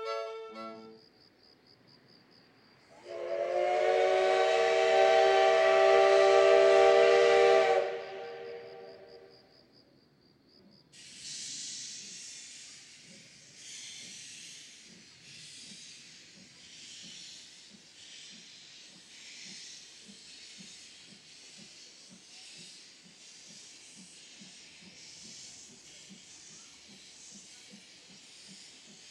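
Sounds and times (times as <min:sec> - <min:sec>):
C11 steam locomotive whistle blasting: 0:00.0 - 0:00.9, 0:03.0 - 0:09.3
passenger train wheels rumbling: 0:00.0 - 0:09.7, 0:10.6 - 0:29.0
C11 steam locomotive chuffing while hauling a passenger train: 0:03.0 - 0:09.3, 0:11.0 - 0:29.0.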